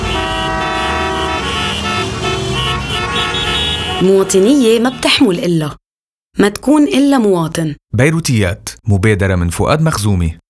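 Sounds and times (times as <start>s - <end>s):
car horns honking: 0.0s - 5.1s
road traffic rumble: 0.0s - 5.8s
speech: 4.0s - 5.8s, 6.4s - 10.4s.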